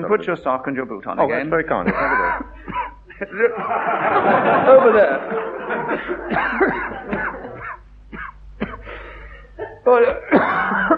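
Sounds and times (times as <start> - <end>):
speech: 0.0 - 6.9, 9.9 - 10.8
laughter: 1.7 - 7.8, 9.0 - 10.9
harsh hacking cough: 1.9 - 3.4, 6.0 - 10.9.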